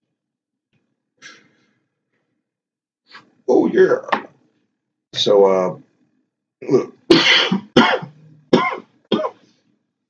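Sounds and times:
speech: 3.2 - 4.2, 5.2 - 5.8, 6.6 - 7.3
loud coughing fit after a puff of smoke: 6.6 - 9.4.

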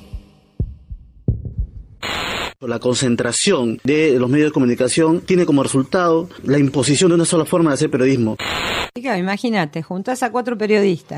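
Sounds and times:
heartbeat sound effect: 0.0 - 2.1
hissing static: 2.0 - 2.6, 8.0 - 9.0
speech: 2.6 - 11.1.

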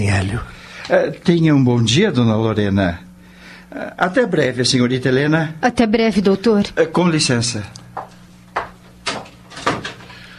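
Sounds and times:
speech: 0.0 - 3.0, 3.7 - 7.8
door closing with dull knocks and clunks: 9.0 - 10.1.

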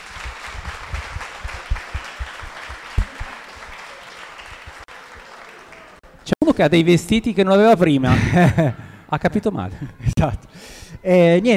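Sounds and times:
sharper individual claps: 0.0 - 6.0
crowd applauding with many hands clapping: 0.0 - 6.4
speech: 6.5 - 11.5
laughter: 8.0 - 8.9.

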